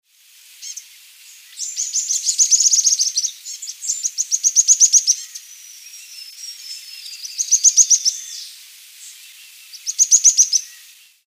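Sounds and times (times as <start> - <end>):
Xenops rutilans streaked xenops singing in Reserva Limoy Alto Paraná: 0.6 - 11.2.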